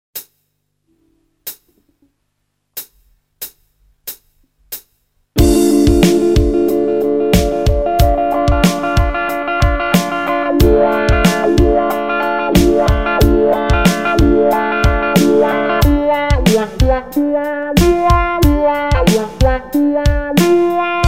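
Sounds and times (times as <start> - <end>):
guitar with effects: 5.4 - 21.0.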